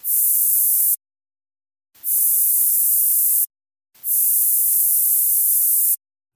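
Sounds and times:
aerosol deodorant can spraying: 0.0s - 1.0s, 2.0s - 6.0s.

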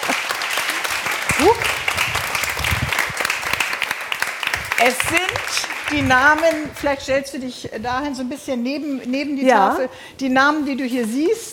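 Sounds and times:
audience applauding: 0.0s - 7.0s
person whooping: 1.3s - 1.8s
speech: 1.4s - 1.8s, 4.8s - 11.5s.

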